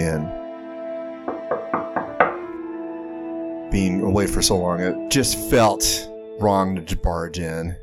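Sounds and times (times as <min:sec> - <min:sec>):
speech: 0:00.0 - 0:00.4, 0:03.7 - 0:07.8
knocking on a door: 0:01.3 - 0:02.6.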